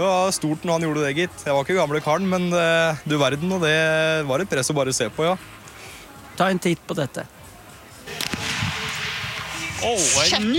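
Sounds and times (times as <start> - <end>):
speech: 0.0 - 5.6, 6.4 - 7.4, 9.8 - 10.5
noise: 0.0 - 10.5
rifle shot fired at a shooting competition after reloading: 8.1 - 9.7.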